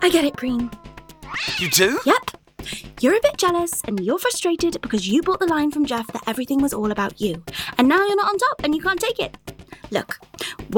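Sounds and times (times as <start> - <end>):
cat meowing while being dragged up a tree: 0.0 - 2.2
speech: 0.0 - 10.7.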